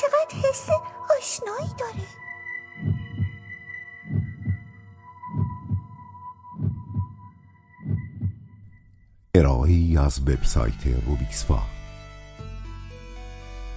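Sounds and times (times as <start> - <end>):
speech: 0.5 - 2.0, 9.4 - 11.8
heartbeat in low double beats: 1.6 - 2.2, 2.8 - 7.2, 7.8 - 8.5.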